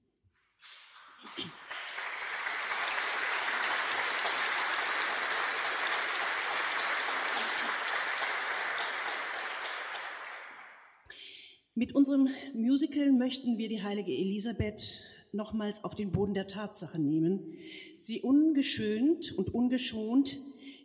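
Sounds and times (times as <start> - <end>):
large crowd cheering: 0.6 - 10.9
large crowd applauding: 0.6 - 11.0
speech: 11.8 - 20.8.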